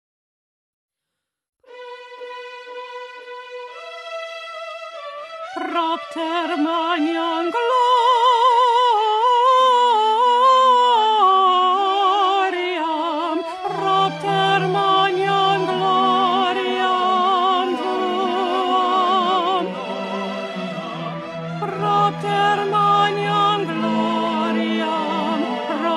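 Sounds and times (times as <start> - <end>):
contralto singing: 5.6 - 25.9.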